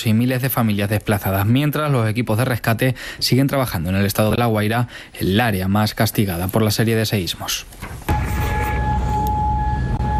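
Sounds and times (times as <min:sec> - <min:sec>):
speech: 0:00.0 - 0:08.1
air raid sirens holding a long steady tone: 0:08.1 - 0:10.1.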